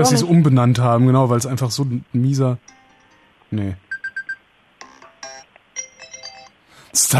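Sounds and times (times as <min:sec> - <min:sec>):
speech: 0:00.0 - 0:02.7, 0:03.5 - 0:03.8, 0:06.9 - 0:07.1
marimba mobile phone ringtone: 0:03.9 - 0:06.6.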